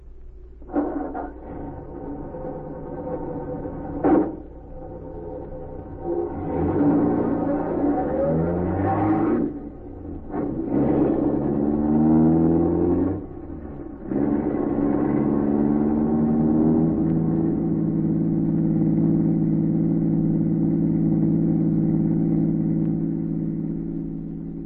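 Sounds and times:
car engine revving and pulling away in the early morning: 0.6 - 24.6.

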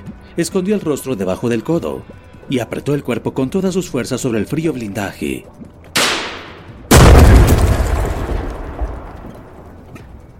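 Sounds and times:
speech: 0.4 - 5.6
sharp gunshot: 6.0 - 8.4
powerful explosion with deep roar and rumble: 6.9 - 9.2.

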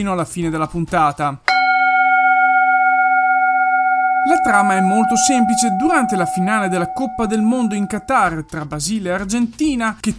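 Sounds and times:
speech: 0.0 - 1.5, 4.4 - 10.1
bell ringing: 1.5 - 8.3.

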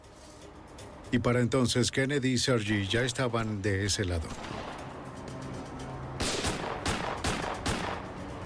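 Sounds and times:
speech: 1.1 - 4.8
gunshots: 6.2 - 8.2.

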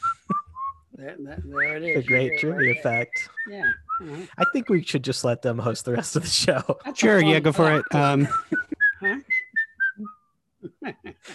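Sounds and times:
person whistling a short bright video game tune: 0.0 - 0.8, 1.4 - 4.9, 7.1 - 10.2
speech: 1.0 - 9.2
laughter: 2.0 - 9.2, 10.6 - 11.3.

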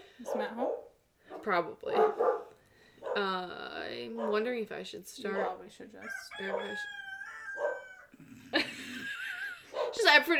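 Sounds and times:
speech: 0.2 - 0.8, 1.4 - 2.4, 3.2 - 7.0, 10.1 - 10.3
dogs barking and howling: 0.2 - 3.3, 4.1 - 4.5, 5.3 - 8.2, 9.6 - 10.2
laughter: 8.3 - 9.8.

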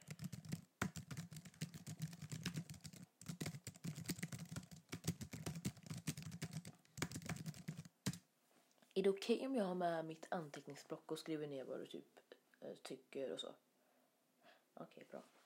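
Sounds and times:
computer keyboard typing: 0.0 - 8.2
speech: 9.0 - 13.6, 14.8 - 15.4.

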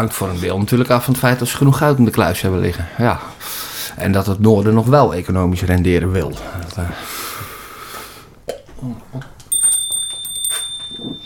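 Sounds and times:
speech: 0.0 - 7.2
burst of noisy hiss: 0.0 - 9.2
bright bell ringing: 9.5 - 11.2.

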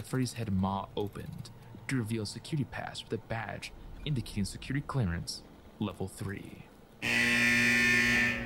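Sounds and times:
speech: 0.0 - 7.4
loud harsh buzzing alarm: 7.0 - 8.4.

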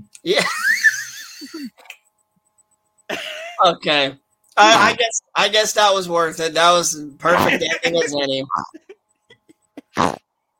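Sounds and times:
speech: 0.1 - 0.7, 3.6 - 9.0
laughter: 0.3 - 1.8, 3.1 - 3.6, 7.3 - 10.0
fart-like raspberry blown with the mouth: 9.8 - 10.2.

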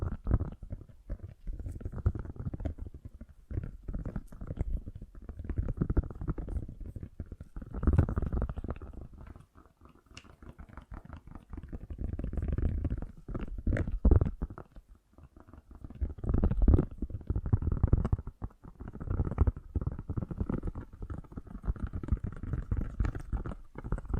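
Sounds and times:
fast gentle tapping: 0.0 - 24.1.

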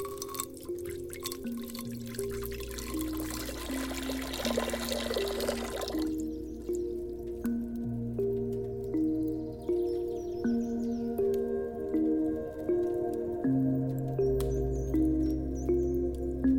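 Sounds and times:
water pouring into a cauldron: 0.0 - 6.3
calm ambient music with gentle melodic notes: 0.0 - 16.5.

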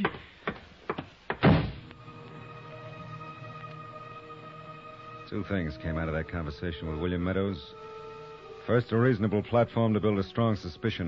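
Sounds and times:
door shutting with a solid thud: 1.0 - 1.9
speech: 5.3 - 7.9, 8.7 - 11.0.

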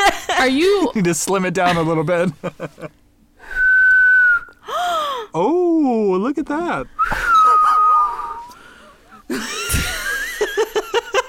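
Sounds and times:
speech: 0.4 - 3.0, 5.3 - 7.3, 9.3 - 9.6
laughter: 1.7 - 3.0, 7.1 - 8.5, 9.2 - 11.2
person whistling without using the tongue: 3.5 - 4.6, 7.0 - 8.6.

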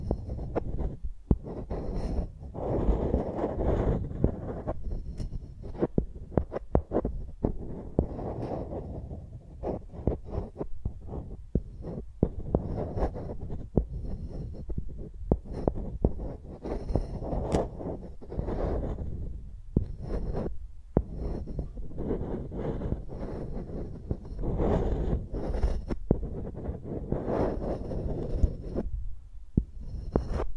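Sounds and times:
microphones rubbed like pencils with a deep rumbling scrape: 0.0 - 30.5.

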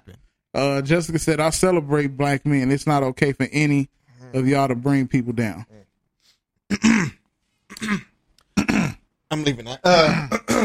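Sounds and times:
speech: 0.6 - 5.8, 9.3 - 10.6
person clearing throat: 6.7 - 9.0, 9.9 - 10.6.

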